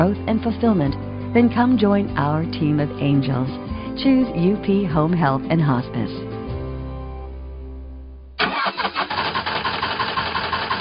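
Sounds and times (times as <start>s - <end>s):
speech: 0.0s - 6.3s
car engine cranking and starting to a rough idle: 8.4s - 10.8s.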